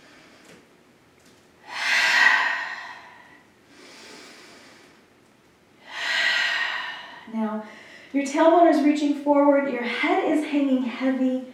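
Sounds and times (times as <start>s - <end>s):
cleansing breaths in through the nose and out through the mouth during yoga: 1.6s - 5.2s, 5.8s - 8.2s
speech: 7.4s - 11.5s.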